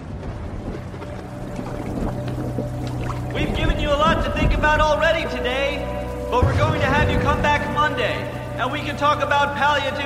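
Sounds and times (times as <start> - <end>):
heavy rain pouring into a waiting room: 0.0 - 10.0
low droning hum: 0.0 - 10.0
speech: 4.3 - 10.0.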